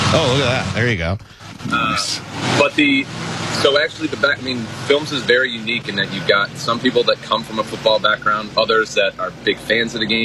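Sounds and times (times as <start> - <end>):
truck rumbling past with engine and road noise: 0.0 - 10.2
speech: 0.1 - 10.2.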